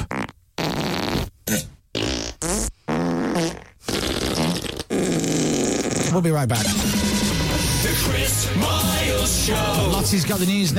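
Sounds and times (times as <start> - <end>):
buzzy fart sound effects: 0.0 - 8.1
speech: 6.2 - 7.0, 7.9 - 10.7.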